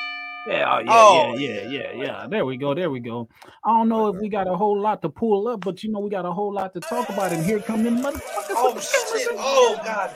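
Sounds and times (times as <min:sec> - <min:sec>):
single bell tone ringing: 0:00.0 - 0:02.7
speech: 0:00.4 - 0:10.1
laughter: 0:06.8 - 0:10.1.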